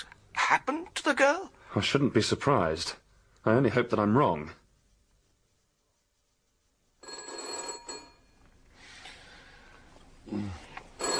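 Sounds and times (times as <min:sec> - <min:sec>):
speech: 0:00.0 - 0:04.6
faint room hiss: 0:00.0 - 0:11.1
telephone bell ringing: 0:07.0 - 0:08.4, 0:11.0 - 0:11.1.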